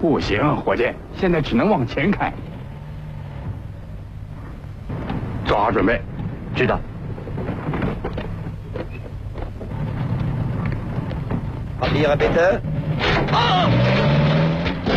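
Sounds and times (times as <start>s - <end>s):
speech: 0.0s - 2.6s, 5.5s - 6.9s, 11.8s - 14.2s
car engine roaring under hard acceleration: 1.3s - 7.7s, 9.6s - 14.9s.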